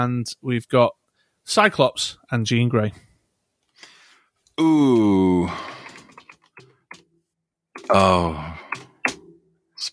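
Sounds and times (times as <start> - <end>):
speech: 0.0 - 3.1, 4.6 - 5.8, 7.9 - 8.6
typing on a loud computer keyboard: 5.5 - 7.0, 7.8 - 9.2.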